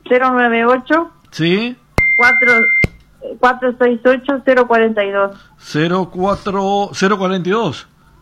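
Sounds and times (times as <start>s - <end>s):
speech: 0.1s - 7.9s
high electronic fax-like tone on a phone line: 2.0s - 3.0s.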